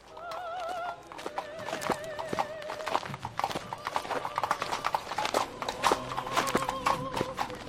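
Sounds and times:
horse hooves clip-clopping in a funeral procession: 0:00.0 - 0:07.6
light breeze: 0:00.0 - 0:07.6
mourners' footsteps: 0:00.0 - 0:07.6.

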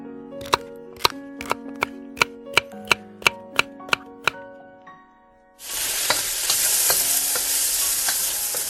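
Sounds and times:
sharp evenly spaced taps: 0:00.4 - 0:04.4
chopped onion and peppers stir-fried in shrimp oil sizzling: 0:05.6 - 0:08.6.

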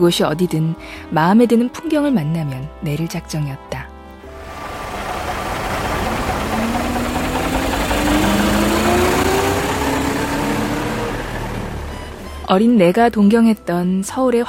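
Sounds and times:
speech: 0:00.0 - 0:03.8, 0:12.5 - 0:14.4
rising mechanical whine of a bus: 0:04.2 - 0:12.5
bus engine rumbling in Seoul: 0:04.2 - 0:13.5.

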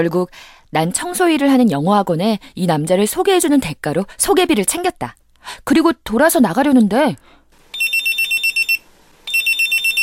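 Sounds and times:
speech: 0:00.0 - 0:07.4
pager beeping in high piercing electronic pulses: 0:07.8 - 0:10.0.

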